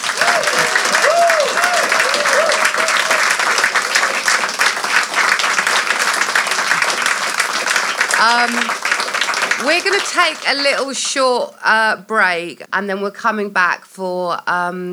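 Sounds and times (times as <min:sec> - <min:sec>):
vocal whoops: 0:00.0 - 0:03.6
audience applause: 0:00.0 - 0:11.2
speech: 0:08.2 - 0:08.8, 0:09.6 - 0:14.9.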